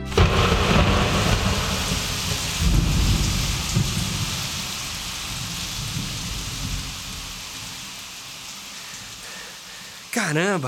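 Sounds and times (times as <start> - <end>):
low rumbles: 0.1 - 7.1
sudden heavy rain shower: 0.1 - 10.6
speech: 10.3 - 10.6.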